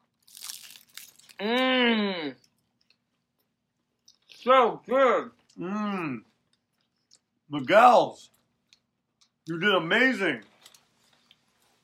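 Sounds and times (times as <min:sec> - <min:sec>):
crunch of biting into a crispy fried chicken taco with sauce: 0:00.1 - 0:01.6
speech: 0:01.4 - 0:02.4, 0:04.4 - 0:06.3, 0:07.5 - 0:08.4, 0:09.5 - 0:10.5
sustained pleased vocal hum from the eater: 0:01.4 - 0:02.4.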